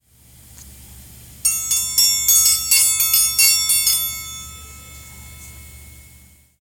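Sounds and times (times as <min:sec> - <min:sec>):
chimes: 0:01.5 - 0:06.6
triangle: 0:01.5 - 0:06.6.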